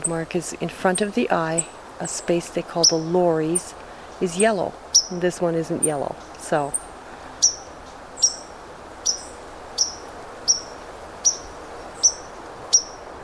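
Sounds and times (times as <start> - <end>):
speech: 0.0 - 6.8
soft steady background hiss: 0.0 - 13.2
young White-throated Sparrow giving sharp high pink alarm notes: 4.3 - 13.0.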